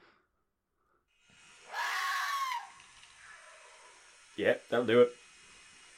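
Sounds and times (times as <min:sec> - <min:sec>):
faint hiss: 0:01.1 - 0:05.9
red fox scream: 0:01.7 - 0:03.9
speech: 0:04.4 - 0:05.2.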